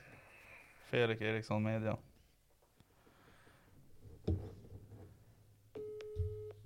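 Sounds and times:
speech: 0:00.9 - 0:02.1
telephone busy signal beeps on a call: 0:05.8 - 0:06.6.

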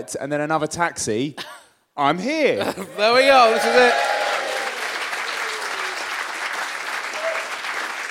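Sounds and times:
speech: 0:00.0 - 0:04.2
audience applauding: 0:03.0 - 0:08.0
cheer or whistle: 0:03.3 - 0:04.7.

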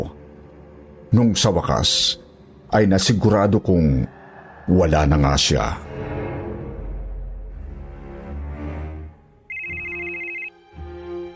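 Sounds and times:
speech: 0:01.1 - 0:06.0
low rumbling background: 0:03.5 - 0:09.4
telephone electronic ringtone of an incoming call: 0:09.5 - 0:10.5.

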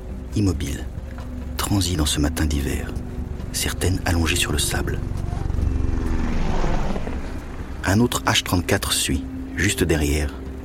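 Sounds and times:
speech: 0:00.4 - 0:01.0, 0:01.7 - 0:05.4, 0:07.8 - 0:10.4
two single-engine propeller military aircraft droning overhead: 0:03.0 - 0:08.7.

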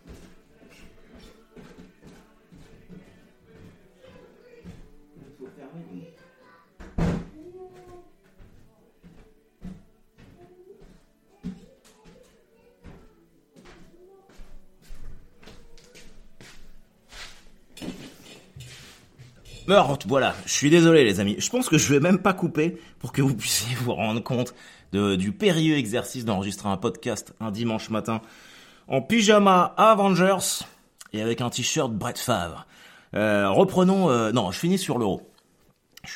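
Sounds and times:
shuffling: 0:00.0 - 0:05.6, 0:07.4 - 0:20.8
faint voices: 0:00.0 - 0:17.2
door pushed shut with a loud thud: 0:06.8 - 0:07.4
speech: 0:19.7 - 0:35.3.

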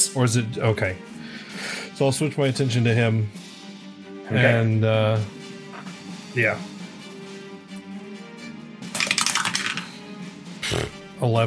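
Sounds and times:
speech: 0:00.0 - 0:03.4, 0:04.3 - 0:05.4, 0:06.4 - 0:06.7, 0:11.2 - 0:11.4
dice clattering across a table during a tabletop role-playing game: 0:08.9 - 0:09.9.

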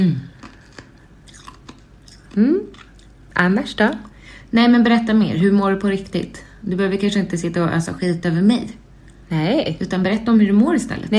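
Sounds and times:
speech: 0:00.0 - 0:00.3, 0:02.4 - 0:02.7, 0:03.4 - 0:11.1
chewing on ice cubes: 0:00.3 - 0:04.2.

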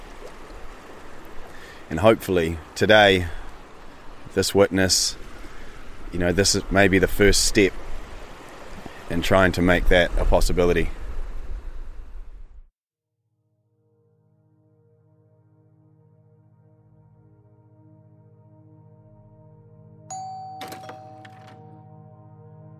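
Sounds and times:
speech: 0:01.9 - 0:03.4, 0:04.4 - 0:05.2, 0:06.1 - 0:07.8, 0:09.1 - 0:11.0
door chime ringing: 0:20.1 - 0:22.0.

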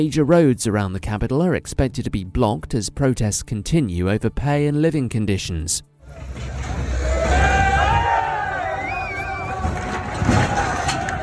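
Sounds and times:
speech: 0:00.0 - 0:07.5
crowd shouting and cheering at farmers' protest in Narbonne, France: 0:06.0 - 0:11.2
two tractors droning while toppling a lorry during farmers' protest in France: 0:06.0 - 0:11.2.

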